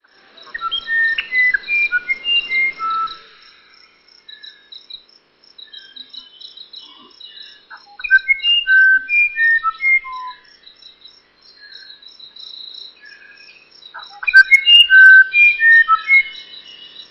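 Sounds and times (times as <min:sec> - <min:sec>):
steady high insect trill: 0:00.0 - 0:17.0
musician wren whistling and chattering song: 0:00.4 - 0:04.4, 0:05.7 - 0:10.5, 0:14.0 - 0:17.0.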